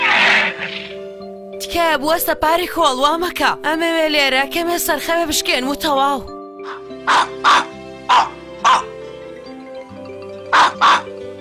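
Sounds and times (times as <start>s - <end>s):
speech: 1.7s - 6.4s, 7.1s - 7.7s
dogs barking: 6.6s - 9.0s, 10.5s - 11.2s.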